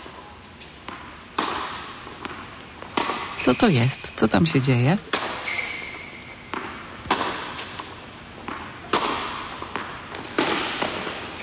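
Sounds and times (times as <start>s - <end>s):
tennis ball being struck and bouncing in a rally: 0.8s - 3.6s, 6.5s - 11.2s
speech: 3.4s - 5.2s.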